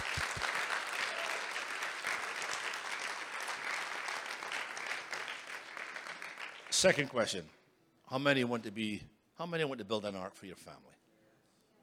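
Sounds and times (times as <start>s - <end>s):
crowd applauding: 0.0s - 7.4s
speech: 6.8s - 11.0s.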